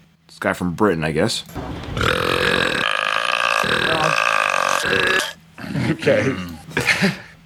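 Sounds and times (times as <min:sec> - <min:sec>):
speech: 0:00.3 - 0:02.1, 0:05.9 - 0:07.2
extremely loud sustained record-breaking burp: 0:01.9 - 0:06.5
laughter: 0:05.7 - 0:07.3.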